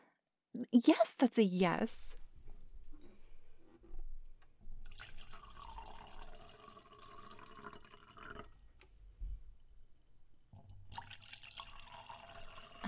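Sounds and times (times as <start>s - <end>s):
speech: 0.6s - 2.2s
wine pouring into a glass: 4.8s - 8.8s, 10.6s - 12.8s.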